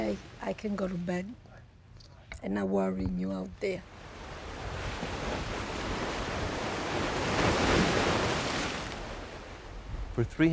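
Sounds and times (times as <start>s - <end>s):
speech: 0.1s - 1.4s, 2.4s - 4.0s, 10.2s - 10.5s
North Atlantic ocean surf crashing against a long granite breakwater in Gloucester: 3.9s - 10.5s.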